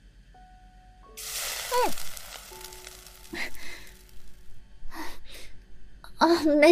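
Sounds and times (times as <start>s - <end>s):
sausages frying and sizzling in hot oil in a pan: 1.2s - 4.5s.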